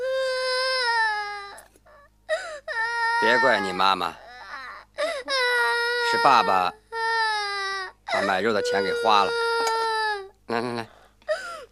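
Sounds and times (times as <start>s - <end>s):
child crying in a high wail: 0.0s - 1.6s, 2.3s - 10.3s
speech: 3.2s - 4.2s, 6.1s - 6.8s, 8.1s - 9.4s, 10.5s - 11.0s
child sobbing breaths: 11.3s - 11.6s.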